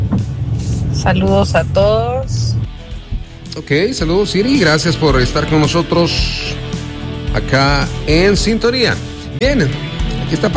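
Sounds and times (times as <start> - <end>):
car moving through traffic heard from inside: 0.0 - 3.5
speech: 1.0 - 2.6, 3.6 - 6.6, 7.4 - 10.5.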